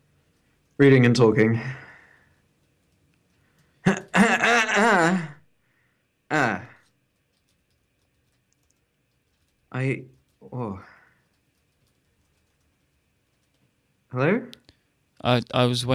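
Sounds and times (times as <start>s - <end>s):
speech: 0.8s - 1.8s, 9.8s - 10.9s, 14.1s - 14.6s, 15.2s - 15.9s
person clearing throat: 3.8s - 5.4s, 6.3s - 6.8s.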